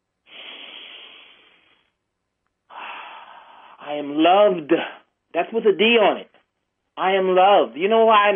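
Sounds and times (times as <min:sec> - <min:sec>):
slow deep breath with a soft airy hiss: 0:00.3 - 0:02.0, 0:02.7 - 0:03.8
speech: 0:03.9 - 0:06.3, 0:07.0 - 0:08.3.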